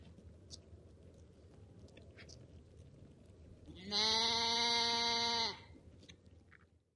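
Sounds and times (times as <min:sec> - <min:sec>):
low background noise: 0:00.0 - 0:06.9
lamb bleating: 0:03.7 - 0:05.7.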